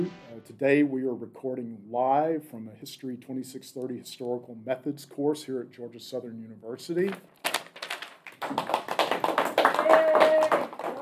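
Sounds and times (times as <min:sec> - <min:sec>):
speech: 0:00.0 - 0:07.5, 0:08.4 - 0:09.0
classroom students applauding: 0:07.8 - 0:10.9.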